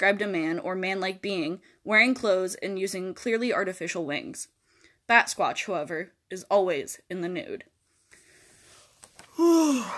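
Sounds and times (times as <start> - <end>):
speech: 0.0 - 7.7, 9.4 - 9.9
person yawning loudly: 9.3 - 9.9.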